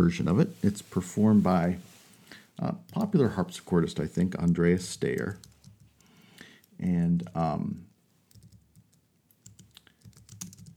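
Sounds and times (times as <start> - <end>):
speech: 0.0 - 1.9, 2.6 - 5.5, 6.8 - 7.9
computer keyboard typing: 4.4 - 6.8, 8.3 - 10.7.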